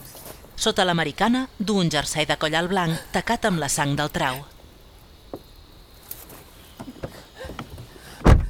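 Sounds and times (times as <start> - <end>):
speech: 0.6 - 4.5
soft clicks and rustles: 4.2 - 8.1
car door shutting with a heavy solid thump: 6.3 - 8.4.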